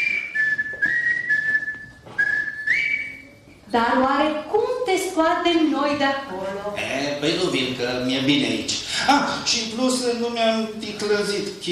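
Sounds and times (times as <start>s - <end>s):
person whistling a simple wavering melody: 0.0s - 3.4s
speech: 3.7s - 11.6s.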